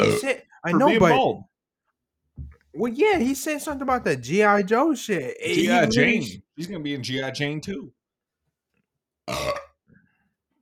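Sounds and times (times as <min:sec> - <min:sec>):
person burping: 0:00.0 - 0:01.1, 0:09.3 - 0:09.8
speech: 0:00.0 - 0:01.5, 0:02.4 - 0:08.0, 0:09.3 - 0:09.6.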